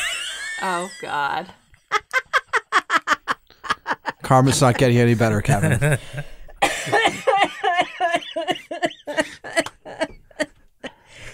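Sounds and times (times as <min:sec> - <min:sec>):
laughter: 0:00.0 - 0:11.0
speech: 0:00.6 - 0:01.6, 0:04.3 - 0:07.2
harsh voiced coughing fit: 0:06.6 - 0:08.0.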